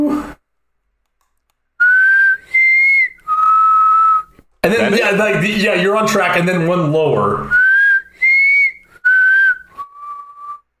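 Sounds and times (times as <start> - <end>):
person whistling a short four-note tune: 1.8 - 4.4, 7.5 - 10.7
speech: 4.7 - 7.6.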